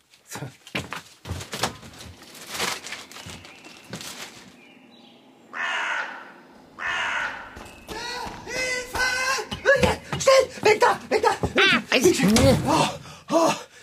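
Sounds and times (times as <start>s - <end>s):
speech: 0.4s - 0.6s, 10.8s - 13.6s
scratchy bird noise: 1.7s - 12.1s
hooded crow cawing on trash bins: 4.9s - 10.2s
sharp thumps and knocks: 7.6s - 12.9s.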